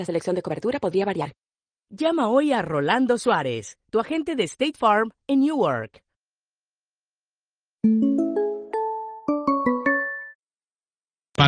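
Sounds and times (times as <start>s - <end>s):
speech: 0.0s - 6.0s, 7.8s - 8.5s
bright melodic bell chimes: 7.8s - 10.4s.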